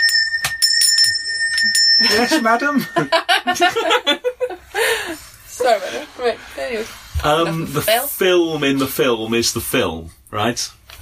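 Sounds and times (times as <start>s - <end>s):
small hand bell shaken briskly to summon a servant: 0.0s - 3.9s
speech: 2.0s - 5.0s, 5.6s - 11.0s
laughter: 2.0s - 5.8s.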